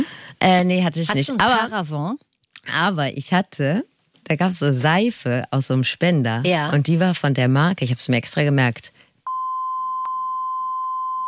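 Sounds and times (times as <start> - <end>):
speech: 0.4 - 9.0
censor beep covering a brand name: 9.3 - 11.2.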